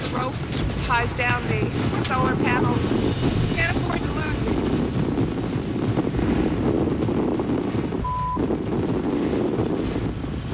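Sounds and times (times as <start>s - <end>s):
strong wind of about 30 miles an hour: 0.0s - 10.5s
speech: 0.9s - 3.4s
short electronic beep: 8.0s - 8.4s.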